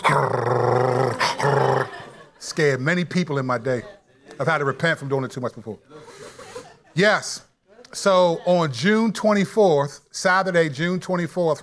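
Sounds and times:
person imitating a dog with growling barks: 0:00.0 - 0:02.0
laughter: 0:00.0 - 0:07.3
speech: 0:02.6 - 0:06.2, 0:07.0 - 0:11.6.

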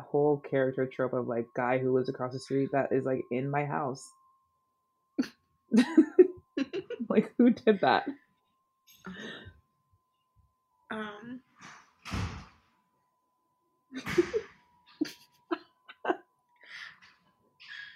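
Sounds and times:
speech: 0:00.1 - 0:04.2, 0:05.2 - 0:06.2, 0:07.1 - 0:08.2, 0:10.9 - 0:12.4, 0:14.0 - 0:14.4
door slamming shut: 0:11.6 - 0:12.7.

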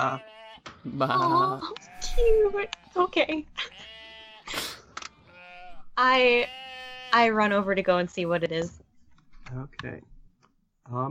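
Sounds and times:
speech: 0:00.0 - 0:03.8, 0:06.0 - 0:08.8, 0:09.5 - 0:10.1, 0:10.9 - 0:11.0
sheep bleating up a road: 0:00.0 - 0:04.5, 0:05.1 - 0:07.5.

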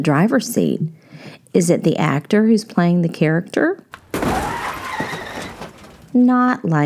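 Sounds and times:
speech: 0:00.0 - 0:03.8, 0:06.1 - 0:06.8
car crash sound effect: 0:03.9 - 0:06.2
glass shattering: 0:03.9 - 0:06.2.

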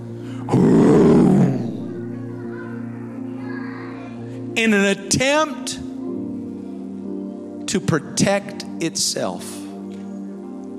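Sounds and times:
lion roaring: 0:00.5 - 0:02.2
speech: 0:04.6 - 0:05.9, 0:07.7 - 0:09.6.

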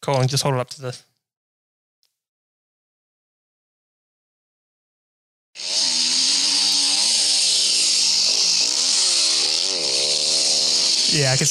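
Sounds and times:
speech: 0:00.0 - 0:01.1, 0:11.2 - 0:11.4
small four-stroke engine idling and revving: 0:05.6 - 0:11.4.

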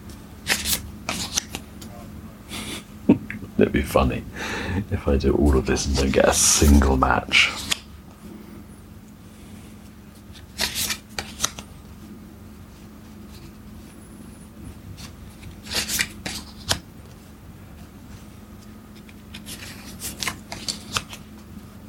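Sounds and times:
hand of playing cards riffling and flicking during a card game: 0:00.0 - 0:01.7, 0:07.4 - 0:07.9, 0:10.1 - 0:11.7, 0:14.9 - 0:17.2, 0:18.6 - 0:21.5
speech: 0:03.6 - 0:07.6.

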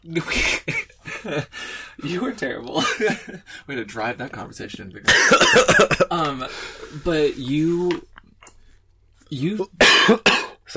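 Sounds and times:
speech: 0:00.0 - 0:00.6, 0:01.2 - 0:08.1, 0:09.3 - 0:10.7
person clearing throat: 0:05.1 - 0:06.2, 0:09.8 - 0:10.6
person coughing: 0:05.1 - 0:06.2, 0:09.8 - 0:10.6.

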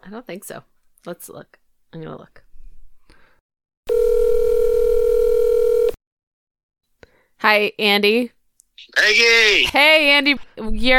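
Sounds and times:
speech: 0:00.0 - 0:02.4, 0:07.4 - 0:10.9
telephone dial tone while placing call: 0:03.9 - 0:06.0.

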